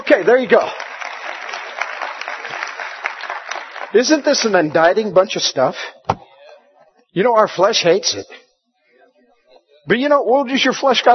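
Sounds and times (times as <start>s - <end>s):
audience applause: 0.0s - 5.2s
speech: 0.1s - 0.8s, 3.9s - 6.0s, 7.2s - 8.4s, 9.8s - 11.1s.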